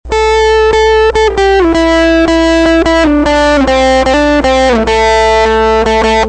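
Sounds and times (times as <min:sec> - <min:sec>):
guitar playing: 0:00.0 - 0:06.2.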